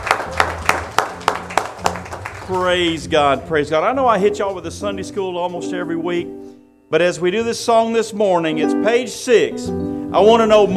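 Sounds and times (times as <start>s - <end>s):
church congregation clapping hands in a steady rhythm: 0.0s - 3.0s
speech: 2.5s - 10.7s.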